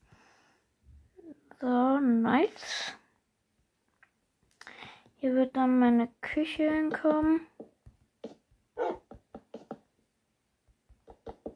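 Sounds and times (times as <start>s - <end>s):
speech: 1.6s - 3.0s, 5.2s - 7.6s
dog barking in short sharp yaps: 8.8s - 9.0s.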